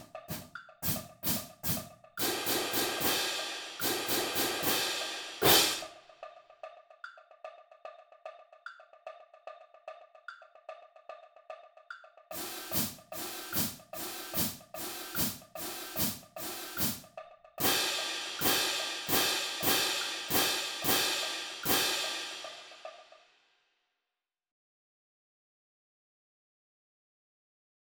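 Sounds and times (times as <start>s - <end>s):
cymbals in triplets: 0.3s - 5.9s, 12.3s - 17.0s, 17.6s - 23.1s.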